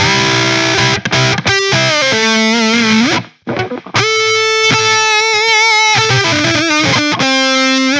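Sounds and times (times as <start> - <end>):
guitar solo: 0.0 - 7.9.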